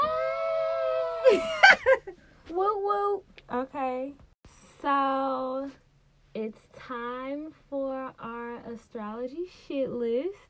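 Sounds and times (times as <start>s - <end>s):
sustained high-pitched human scream and shrieks: 0.0s - 1.6s
speech: 1.2s - 1.9s, 2.5s - 4.2s, 4.8s - 5.8s, 6.4s - 10.4s.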